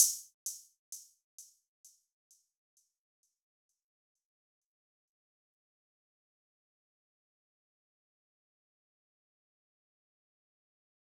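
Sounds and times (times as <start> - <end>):
open hi-hat drum loop at 130 BPM: 0.0 - 1.0.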